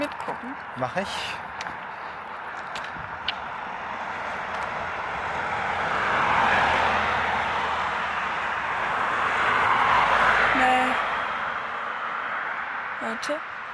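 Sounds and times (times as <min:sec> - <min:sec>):
speech: 0:00.0 - 0:01.4, 0:13.3 - 0:13.5
steady broadband rush of road traffic: 0:00.0 - 0:13.7
vehicle passing fairly close: 0:00.0 - 0:13.7.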